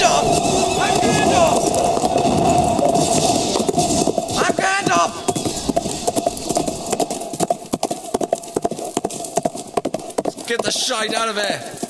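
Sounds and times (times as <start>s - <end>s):
horse hooves clip-clopping: 0.0s - 11.8s
speech: 10.9s - 11.8s.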